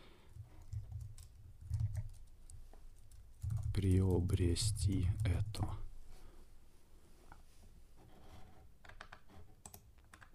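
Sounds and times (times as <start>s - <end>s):
typing a search query on a computer keyboard: 0.6s - 5.8s, 8.9s - 10.3s
speech: 3.8s - 5.8s.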